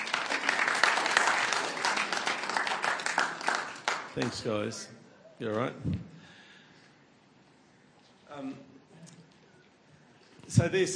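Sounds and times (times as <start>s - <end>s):
room full of people applauding: 0.0s - 4.5s
speech: 4.2s - 6.2s, 8.4s - 8.8s, 10.5s - 10.9s.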